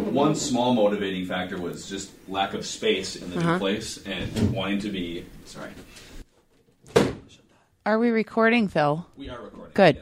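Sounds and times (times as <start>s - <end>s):
speech: 0.1s - 6.1s, 7.9s - 10.0s
door slamming shut: 6.9s - 7.3s.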